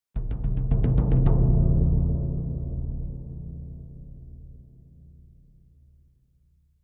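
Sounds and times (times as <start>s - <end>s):
deep tom drums: 0.2s - 5.0s.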